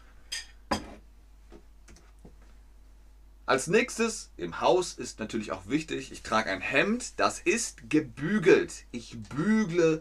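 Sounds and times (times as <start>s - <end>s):
dishes clinking while being washed up: 0.3s - 1.0s
speech: 3.5s - 10.0s.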